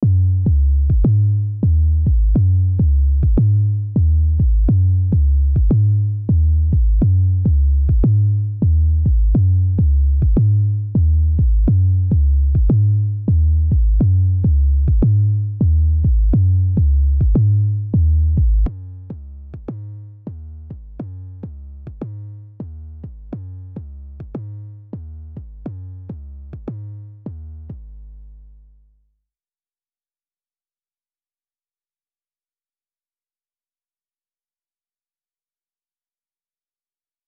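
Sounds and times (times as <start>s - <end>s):
Afrobeats bass melody loop: 0.0s - 28.7s.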